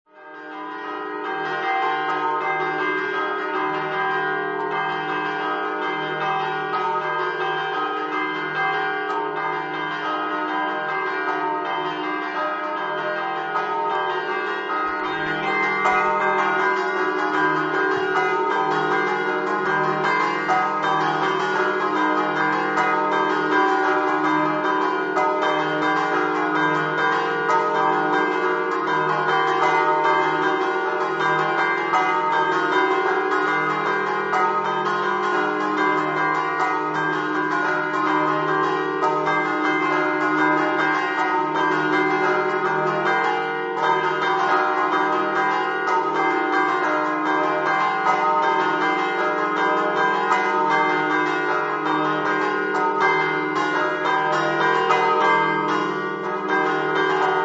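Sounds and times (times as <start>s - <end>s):
church bells ringing in Cerneglons: 0.1s - 57.4s.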